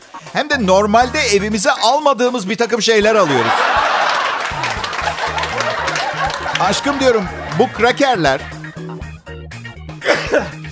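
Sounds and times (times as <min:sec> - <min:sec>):
speech: 0:00.2 - 0:04.0, 0:06.6 - 0:08.5, 0:10.3 - 0:10.6
laughter: 0:03.1 - 0:09.0
person sneezing: 0:10.0 - 0:10.7.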